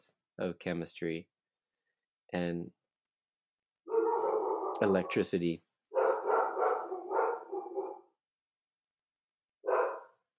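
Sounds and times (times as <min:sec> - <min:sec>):
speech: 0:00.4 - 0:01.3, 0:02.3 - 0:02.8, 0:04.8 - 0:05.7
dog barking: 0:03.9 - 0:05.3, 0:05.9 - 0:08.1, 0:09.6 - 0:10.2.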